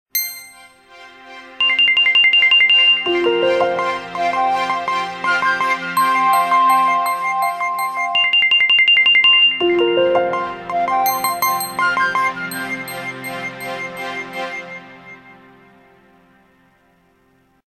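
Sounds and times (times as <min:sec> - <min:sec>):
phone ringtone melody: 0:00.2 - 0:00.8, 0:01.6 - 0:15.2.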